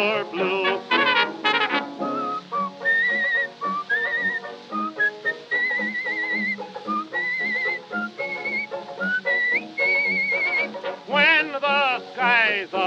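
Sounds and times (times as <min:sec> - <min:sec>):
speech: 0:00.0 - 0:00.9
instrumental backing music on an older recording: 0:00.0 - 0:12.8
person whistling a bright lilting tune: 0:02.0 - 0:10.8.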